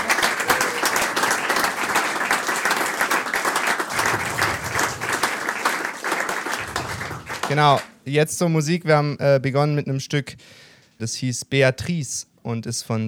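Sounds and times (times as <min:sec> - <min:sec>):
audience applause at a live jazz concert: 0:00.0 - 0:08.0
speech: 0:07.5 - 0:13.0.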